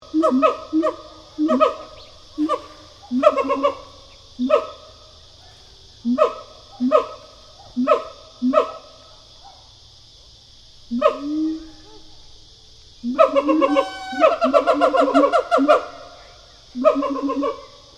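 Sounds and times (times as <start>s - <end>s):
siamang gibbon pair barking hoots: 0.1s - 4.8s, 6.0s - 8.9s, 10.9s - 12.0s, 13.0s - 16.2s, 16.8s - 17.7s
speech: 0.2s - 1.8s.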